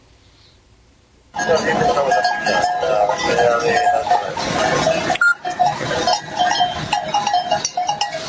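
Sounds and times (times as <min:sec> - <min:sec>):
bells worn by a flock of sheep moving through a small town in Spain: 0:01.3 - 0:08.2.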